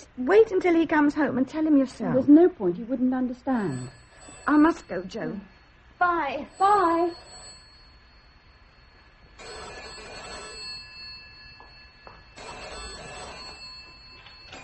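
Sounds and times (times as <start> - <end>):
speech: 0.2 - 7.4
telephone bell ringing: 3.5 - 5.7, 6.4 - 14.6.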